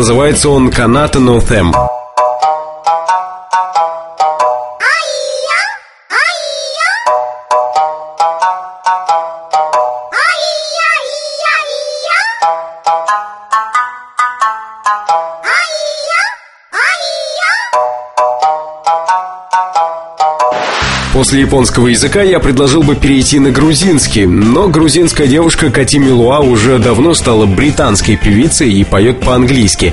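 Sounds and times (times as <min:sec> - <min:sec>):
speech: 0:00.0 - 0:02.0, 0:21.2 - 0:29.9
bright repetitive phone-style melody of quick plucked notes: 0:01.6 - 0:05.4, 0:07.0 - 0:10.2, 0:12.3 - 0:15.5, 0:17.7 - 0:20.6
high sung voice: 0:04.6 - 0:08.5, 0:10.0 - 0:12.6, 0:15.3 - 0:17.9.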